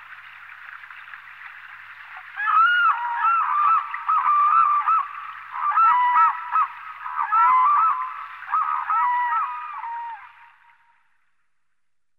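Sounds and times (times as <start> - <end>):
Demoiselle cranes calling: 2.2 - 10.6.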